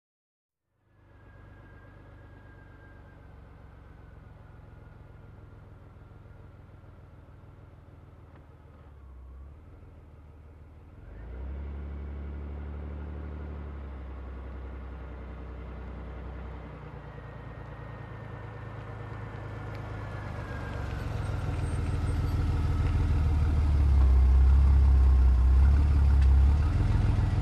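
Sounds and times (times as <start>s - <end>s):
muscle car parking: 17.6s - 27.3s.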